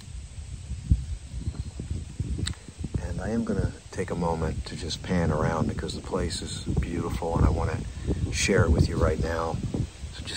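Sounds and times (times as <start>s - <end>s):
faint rustle of leaves: 0.0s - 10.3s
gusts of wind buffeting: 0.0s - 10.3s
speech: 3.2s - 10.3s.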